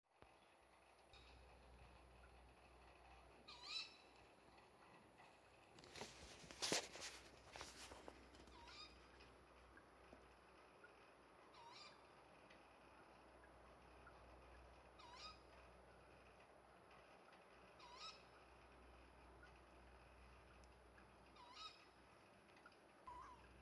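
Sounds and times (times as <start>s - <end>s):
nighttime animal noise: 0.5s - 6.7s, 7.6s - 23.5s.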